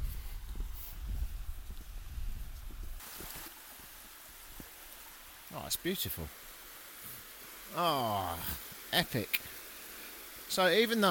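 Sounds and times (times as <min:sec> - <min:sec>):
wind buffeting: 0:00.0 - 0:03.4
fast-flowing mountain waterfall roaring: 0:03.1 - 0:11.0
speech: 0:05.6 - 0:06.4, 0:07.7 - 0:09.5, 0:10.5 - 0:11.0.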